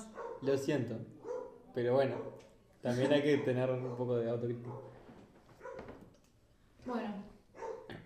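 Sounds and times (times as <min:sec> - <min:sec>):
dog barking: 0:00.0 - 0:00.6, 0:01.2 - 0:02.5, 0:03.3 - 0:05.0, 0:05.6 - 0:06.0, 0:07.5 - 0:08.0
faint noise: 0:00.0 - 0:08.0
speech: 0:00.4 - 0:01.2, 0:01.8 - 0:05.0, 0:06.8 - 0:07.3.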